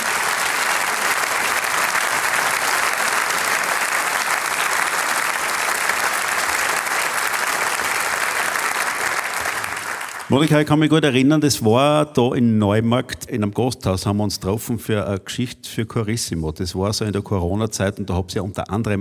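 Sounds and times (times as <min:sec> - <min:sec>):
large audience applauding: 0:00.0 - 0:10.8
speech: 0:10.3 - 0:19.0.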